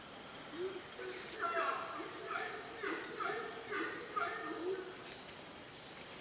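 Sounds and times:
horned screamer calling: 0.5s - 5.3s.

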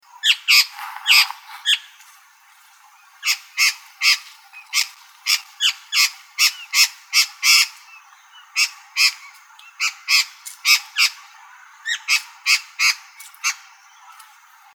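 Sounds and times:
Babax lanceolatus calling: 0.1s - 2.0s, 2.8s - 14.4s.

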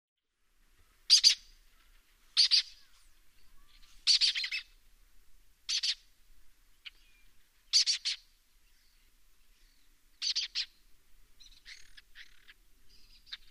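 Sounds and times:
lesser kestrel giving harsh rasping calls: 1.1s - 4.8s, 5.7s - 6.1s, 6.8s - 10.8s, 11.4s - 13.4s.

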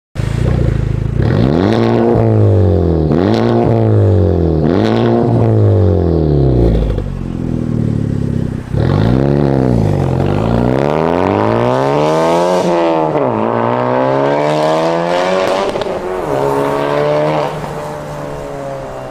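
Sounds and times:
Honda Civic exhaust: 0.2s - 19.1s.

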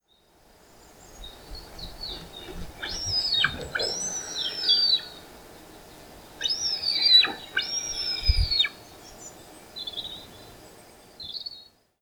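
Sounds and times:
Lybiidae barbet calling: 2.0s - 5.4s, 6.4s - 8.8s.

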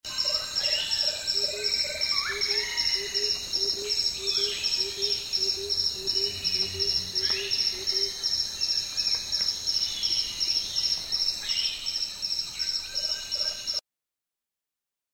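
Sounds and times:
high shrill insect chorus: 0.1s - 13.8s
gilded barbet giving low hollow notes: 5.0s - 8.1s.

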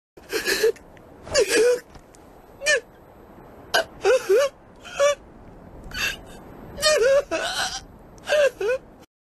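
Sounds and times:
anime character crying: 0.3s - 1.9s, 2.6s - 3.0s, 3.8s - 5.2s, 5.9s - 9.1s.

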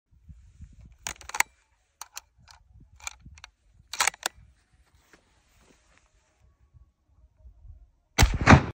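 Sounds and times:
sniper rifle shot: 8.2s - 8.7s.

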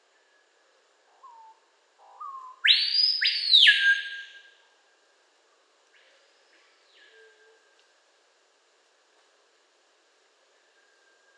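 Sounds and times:
Screaming piha Lipaugus vociferans whistling call: 1.2s - 4.6s.

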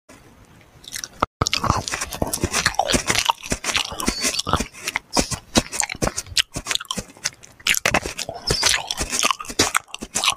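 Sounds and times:
eating bananas: 0.8s - 10.3s.

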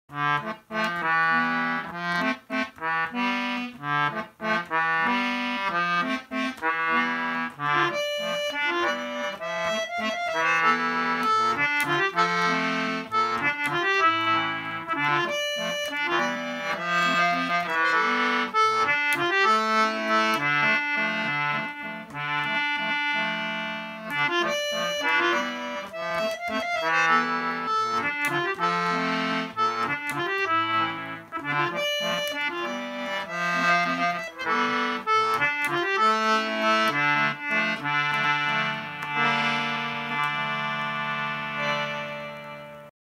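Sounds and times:
concertina: 0.1s - 42.9s.

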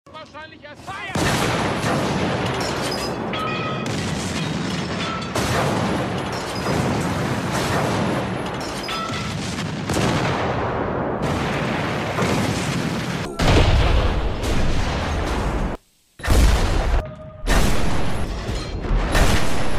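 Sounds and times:
artillery fire: 1.1s - 19.7s.

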